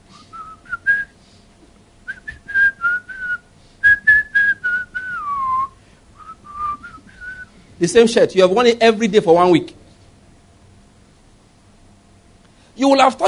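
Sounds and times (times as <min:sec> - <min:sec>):
person whistling a cheerful bouncy tune: 0:00.1 - 0:01.2, 0:02.1 - 0:07.5
speech: 0:07.8 - 0:09.8, 0:12.9 - 0:13.2.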